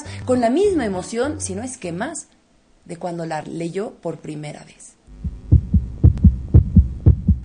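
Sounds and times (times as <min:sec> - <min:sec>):
speech: 0:00.3 - 0:04.9
heartbeat sound effect with deep booming lub-dub thumps: 0:05.1 - 0:07.4.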